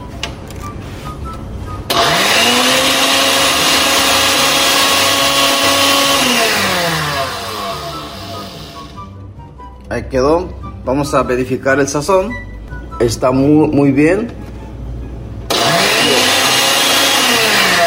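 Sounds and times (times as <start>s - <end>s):
blender motor blending cooked sauce ingredients: 1.9s - 9.0s, 15.5s - 17.8s
speech: 10.1s - 14.4s.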